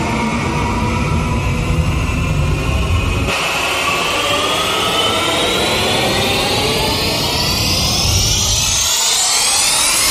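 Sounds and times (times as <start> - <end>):
short rising riser: 0.2 - 10.1.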